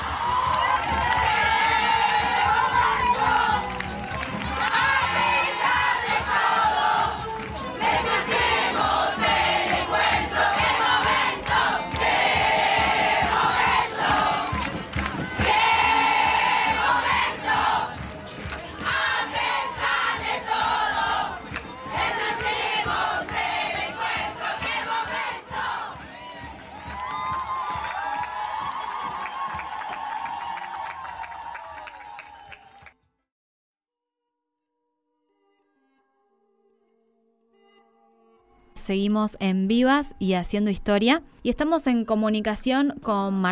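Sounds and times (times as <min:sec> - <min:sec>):
large crowd of women shouting a chant at the National Women's Meeting in Trelew: 0:00.0 - 0:03.7, 0:04.5 - 0:18.0, 0:18.7 - 0:26.2
crowd of women cheering: 0:00.0 - 0:33.0
speech: 0:38.9 - 0:43.5.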